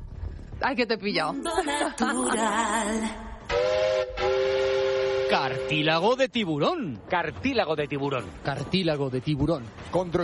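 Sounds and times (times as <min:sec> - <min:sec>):
speech: 0:00.6 - 0:03.3, 0:05.3 - 0:10.2
steam train whistle sound effect: 0:03.5 - 0:06.0.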